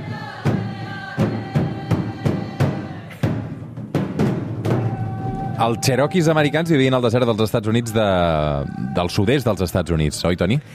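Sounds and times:
chanting voices in Native American rain dance music: 0:00.0 - 0:03.3, 0:04.7 - 0:10.7
drumbeats in Native American rain dance music: 0:00.0 - 0:08.0
speech: 0:05.6 - 0:10.7.

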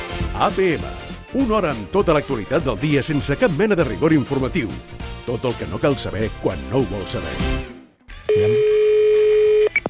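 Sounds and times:
speech: 0:00.4 - 0:07.7
telephone ringing with an incoming call: 0:08.3 - 0:09.8.

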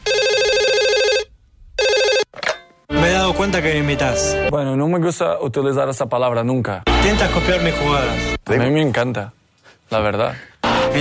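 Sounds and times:
telephone ringing with electronic trills for an incoming call: 0:00.0 - 0:02.6
speech: 0:03.4 - 0:10.9.

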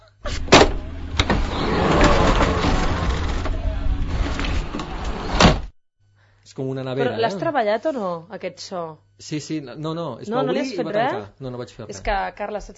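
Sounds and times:
mechanical noise: 0:00.2 - 0:05.7
helicopter door being closed: 0:00.3 - 0:03.6
speech: 0:06.6 - 0:12.7.

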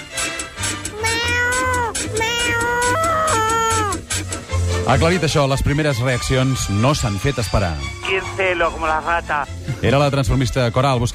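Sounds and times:
two cats meowing and yowling: 0:00.9 - 0:04.0
speech: 0:04.9 - 0:11.1.

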